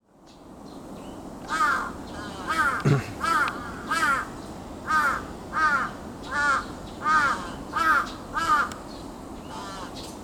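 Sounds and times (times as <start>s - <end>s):
large-billed crow cawing: 1.5s - 4.3s, 4.9s - 8.8s, 9.5s - 9.9s.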